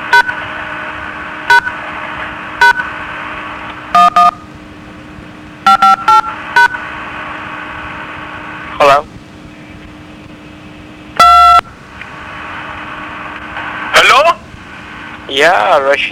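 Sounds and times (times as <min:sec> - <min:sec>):
steady low hum: 0:00.0 - 0:16.1
telephone keypad dual-tone beeps: 0:04.0 - 0:04.4, 0:05.7 - 0:06.8, 0:11.2 - 0:11.6
speech: 0:15.4 - 0:16.1.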